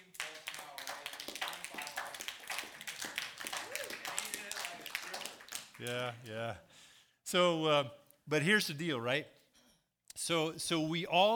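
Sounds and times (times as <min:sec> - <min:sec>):
several people clapping: 0:00.0 - 0:06.6
speech: 0:05.8 - 0:06.7, 0:07.3 - 0:09.4, 0:10.2 - 0:11.3.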